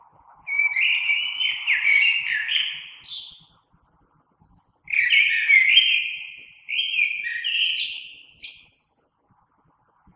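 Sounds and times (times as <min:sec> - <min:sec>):
common blackbird song with mellow whistled notes: 0:00.4 - 0:03.6, 0:04.2 - 0:08.8.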